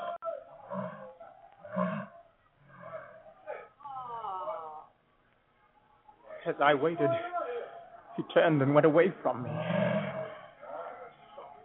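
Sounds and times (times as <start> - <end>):
lion roaring and growling: 0.6 - 3.3, 9.4 - 10.5
speech: 6.4 - 7.4, 8.2 - 9.8.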